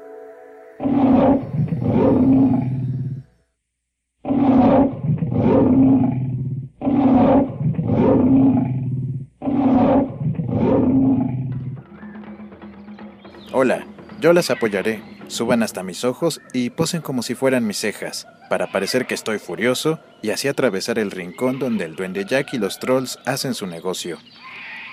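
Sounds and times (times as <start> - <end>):
tiger roaring: 0.8 - 3.3, 4.2 - 11.8
speech: 14.2 - 24.4.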